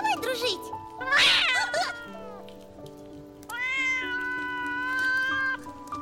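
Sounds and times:
speech: 0.1s - 1.9s
angry cat under an awning yowling: 1.0s - 2.5s, 3.4s - 5.9s.

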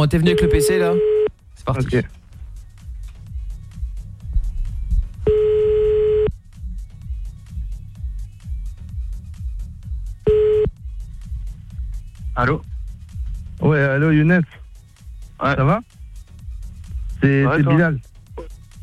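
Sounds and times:
speech: 0.0s - 2.2s, 12.4s - 12.7s, 13.6s - 14.6s, 15.4s - 16.0s, 17.2s - 18.5s
low rhythmic music: 0.0s - 18.8s
telephone tone bursts as a call is dialed from home: 0.3s - 1.3s, 5.3s - 6.3s, 10.3s - 10.7s.

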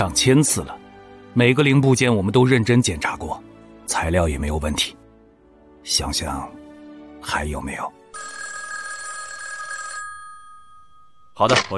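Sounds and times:
speech: 0.0s - 5.0s, 5.8s - 6.6s, 7.2s - 8.0s, 11.4s - 11.7s
telephone bell ringing at a nuclear test site: 8.1s - 11.4s.

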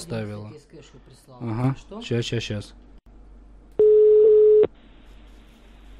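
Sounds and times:
speech: 0.0s - 2.9s
telephone busy signal beep: 3.8s - 4.7s.

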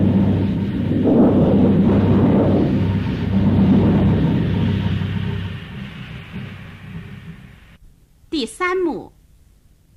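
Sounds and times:
heavy rain in a stage drama storm scene: 0.0s - 7.8s
thunder rolling in a stage drama storm scene: 0.0s - 7.8s
speech: 8.4s - 9.2s.

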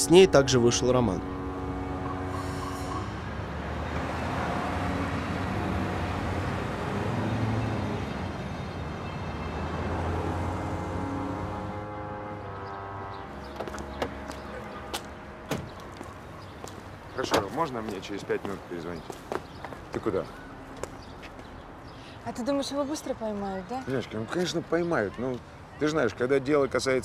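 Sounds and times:
speech: 0.0s - 1.4s, 17.6s - 19.4s, 20.0s - 20.4s, 22.3s - 27.0s
daytime street traffic with vehicles driving by: 0.0s - 27.0s.

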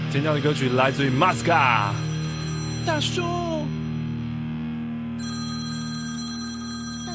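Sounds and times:
speech: 0.1s - 2.1s, 2.9s - 3.5s
mobile phone ringtone of an incoming call: 1.8s - 3.9s, 5.2s - 7.1s.

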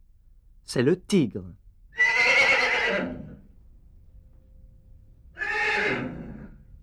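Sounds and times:
speech: 0.7s - 1.6s, 2.9s - 3.3s
horse neighing: 2.0s - 3.4s, 5.4s - 6.6s.

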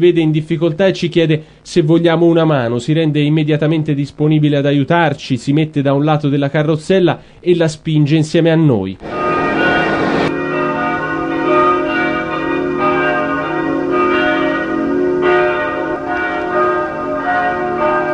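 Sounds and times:
speech: 0.0s - 9.2s
church bells ringing at a multireligious site near a checkpoint: 9.0s - 18.1s.

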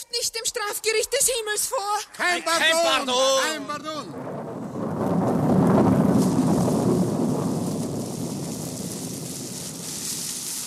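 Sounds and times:
speech: 0.0s - 4.6s
thunder from a lightning strike rumbling: 2.6s - 10.6s.

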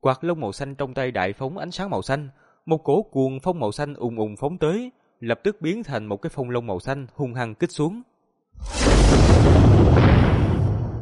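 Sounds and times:
speech: 0.0s - 10.0s
massive explosion: 8.6s - 11.0s.

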